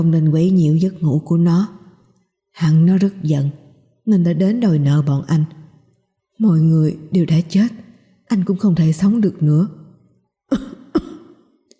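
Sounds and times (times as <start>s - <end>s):
speech: 0.0s - 1.8s, 2.6s - 5.6s, 6.4s - 9.8s, 10.5s - 11.1s
weak dying man coughing violently: 10.5s - 11.6s.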